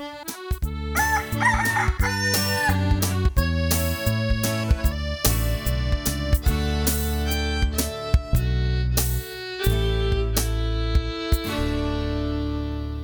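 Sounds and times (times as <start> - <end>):
music with bright plucked accents: 0.8 - 13.0
big white cockerel crowing: 1.0 - 2.8.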